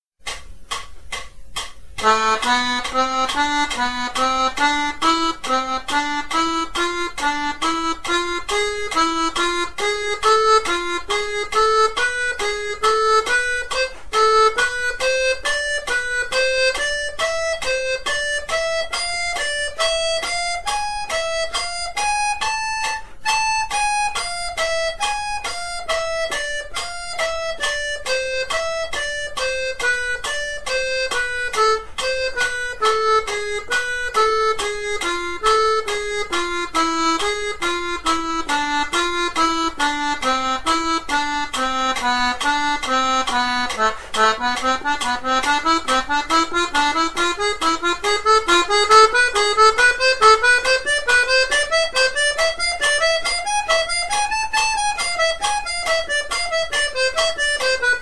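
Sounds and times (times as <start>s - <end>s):
A harmonic minor scale in thirds: 0.2s - 57.9s.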